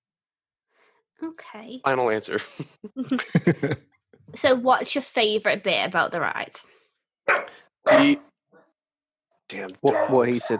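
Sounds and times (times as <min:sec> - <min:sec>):
speech: 0:01.2 - 0:08.3, 0:09.5 - 0:10.5
laughter: 0:02.3 - 0:03.8
animatronic dog on a roller coaster ride barking: 0:07.3 - 0:08.2, 0:09.8 - 0:10.5
faint animatronic dog yip: 0:07.3 - 0:08.2, 0:09.8 - 0:10.5.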